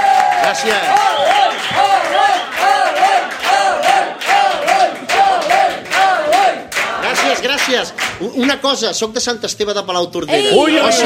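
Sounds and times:
rhythmic rising whoops: 0:00.0 - 0:07.1
large audience cheering: 0:00.0 - 0:08.0, 0:10.3 - 0:11.0
large audience applauding: 0:00.0 - 0:08.6
speech: 0:00.5 - 0:03.0, 0:07.2 - 0:11.0.

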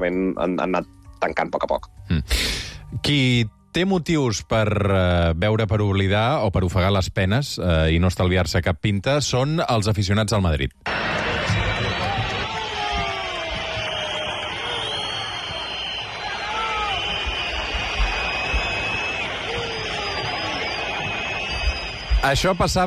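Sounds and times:
speech: 0:00.0 - 0:11.0, 0:22.3 - 0:22.8
huge stadium crowd of football fans roaring at the Santiago Bernabéu: 0:10.9 - 0:22.8.

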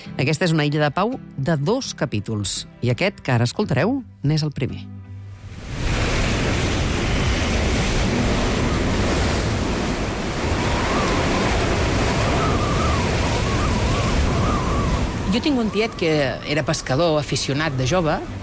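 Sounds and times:
speech: 0:00.2 - 0:05.0, 0:15.3 - 0:18.4
rough sea surf breaking on the shore at Sitges: 0:05.3 - 0:18.4
gusty wind buffeting the microphone: 0:05.6 - 0:16.5.

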